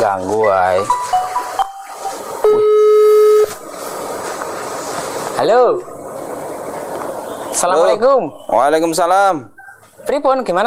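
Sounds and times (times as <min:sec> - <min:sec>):
speech: 0:00.0 - 0:01.3, 0:05.4 - 0:05.9, 0:07.6 - 0:10.6
phone ringing with an incoming call: 0:00.5 - 0:03.6.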